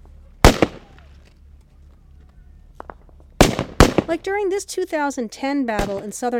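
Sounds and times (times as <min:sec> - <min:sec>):
gunshots during a Taliban attack on a Marine patrol in southern Afghanistan: 0:00.4 - 0:01.0, 0:03.4 - 0:04.2, 0:05.8 - 0:06.1
speech: 0:04.1 - 0:06.3.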